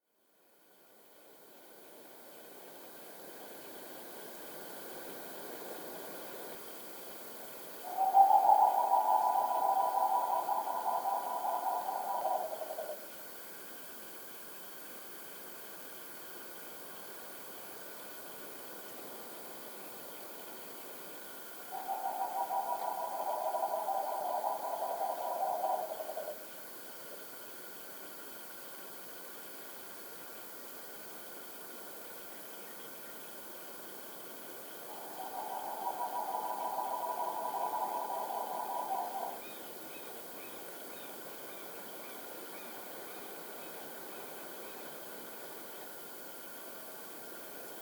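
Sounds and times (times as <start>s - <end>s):
green ibis calling: 7.9s - 13.0s, 21.7s - 26.4s, 34.9s - 40.6s.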